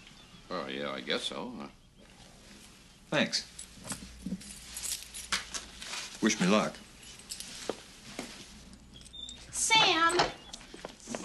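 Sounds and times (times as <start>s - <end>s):
speech: 0.7s - 1.8s, 3.1s - 4.5s, 6.2s - 6.8s, 9.7s - 10.4s
set of keys jangling: 3.5s - 5.9s, 7.0s - 7.8s, 8.7s - 10.2s.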